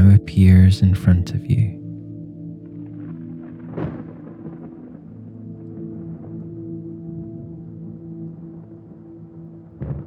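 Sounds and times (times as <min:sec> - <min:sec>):
speech: 0:00.4 - 0:01.8
deep thunder rumbling in a storm: 0:02.9 - 0:10.0.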